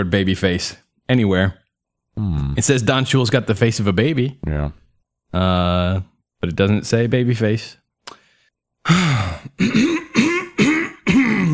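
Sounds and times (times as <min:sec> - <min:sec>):
speech: 0:00.0 - 0:01.6, 0:02.2 - 0:07.8, 0:08.8 - 0:09.9
person clearing throat: 0:08.9 - 0:11.5.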